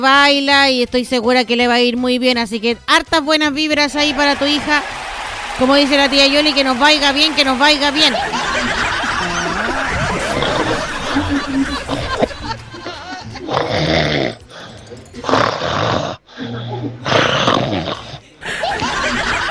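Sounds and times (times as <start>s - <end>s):
speech: 0.0s - 8.6s
laughter: 4.1s - 13.9s, 18.2s - 19.4s
person imitating snoring: 13.4s - 18.2s.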